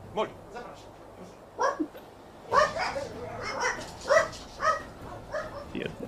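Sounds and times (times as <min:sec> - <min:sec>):
speech: 0:00.2 - 0:00.9
dog giving short high-pitched barks and yips: 0:01.6 - 0:01.9, 0:02.5 - 0:05.8.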